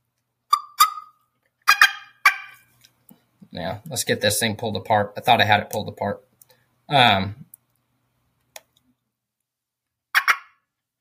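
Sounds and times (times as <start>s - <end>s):
person imitating a hen turkey on a call with raspy yelps: 0.5s - 2.6s, 10.1s - 10.6s
speech: 3.5s - 6.3s, 6.9s - 7.5s.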